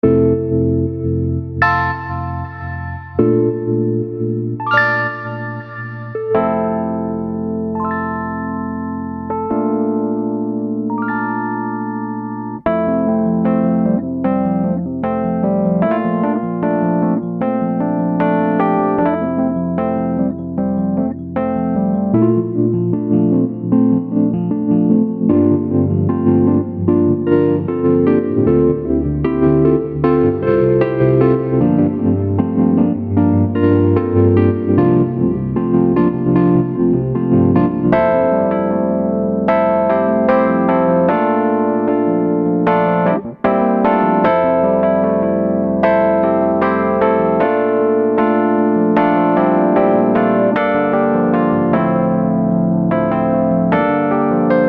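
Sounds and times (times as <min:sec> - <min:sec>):
electric piano: 0:00.0 - 0:54.6.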